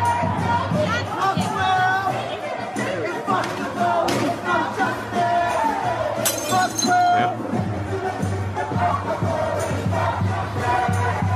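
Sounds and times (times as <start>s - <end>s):
loud continuous crowd chatter: 0.0s - 11.3s
thrown drinking glass shattering: 6.2s - 7.0s.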